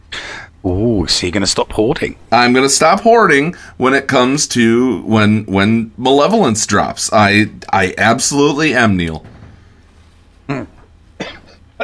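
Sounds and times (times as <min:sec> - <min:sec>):
speech: 0:00.6 - 0:09.3
person coughing to clear a frog in the throat: 0:10.5 - 0:11.8.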